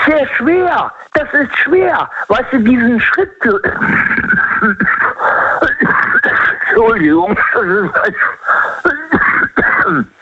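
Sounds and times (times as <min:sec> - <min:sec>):
speech: 0:00.1 - 0:05.5, 0:06.8 - 0:10.2
person coughing harshly: 0:03.7 - 0:10.1.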